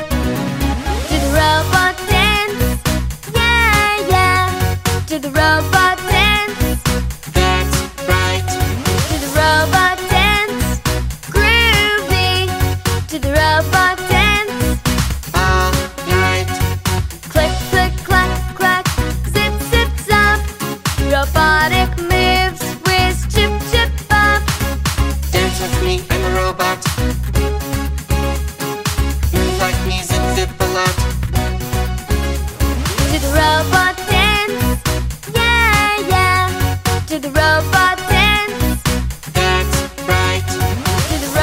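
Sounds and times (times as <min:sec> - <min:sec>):
dance music with vocals: 0:00.1 - 0:41.4.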